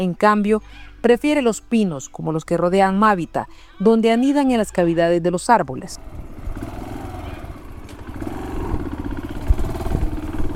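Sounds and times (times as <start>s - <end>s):
speech: 0.0s - 6.7s
motorcycle engine rumbling along trails to a humid forest reserve in Honduras: 5.5s - 10.5s.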